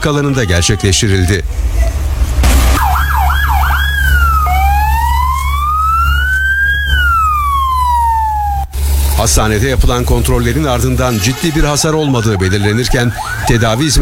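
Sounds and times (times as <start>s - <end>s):
speech: 0.0s - 2.0s, 9.2s - 14.0s
constant low rumble: 1.2s - 11.8s
ambulance siren sounding during an earthquake drill: 2.7s - 9.4s, 10.3s - 14.0s.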